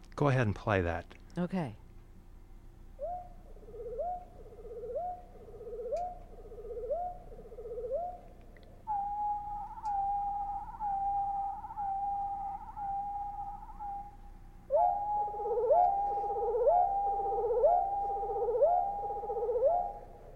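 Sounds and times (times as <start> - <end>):
speech: 0.2 - 1.8
songbird flourish sung with both voice boxes in harmony: 3.0 - 8.2, 8.9 - 20.2.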